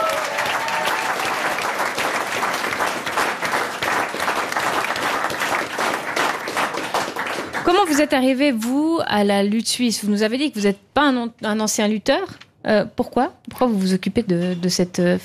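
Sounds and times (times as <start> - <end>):
audience applauding: 0.0 - 8.1
speech: 7.7 - 15.2.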